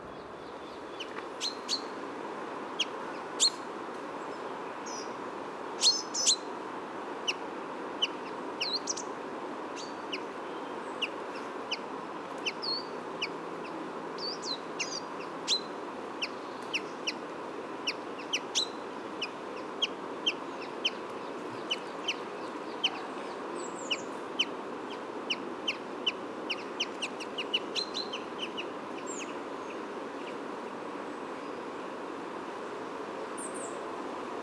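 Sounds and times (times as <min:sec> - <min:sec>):
outdoor hiss: 0:00.0 - 0:34.4
common chaffinch contact calls: 0:00.5 - 0:02.0, 0:02.8 - 0:03.6, 0:05.8 - 0:06.5, 0:08.0 - 0:09.2, 0:10.9 - 0:29.8.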